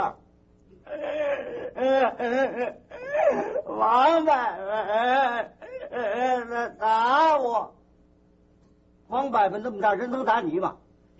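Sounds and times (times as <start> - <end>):
child crying and wailing: 0.9 - 7.6
speech: 1.8 - 7.8, 9.1 - 11.1.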